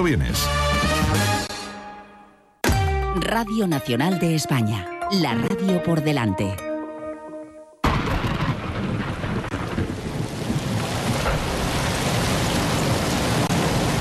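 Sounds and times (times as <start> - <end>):
speech: 0.0 - 1.4, 3.2 - 6.7
heavy storm rain pouring: 7.8 - 14.0
thunder with a deep rumbling undertone: 7.8 - 14.0.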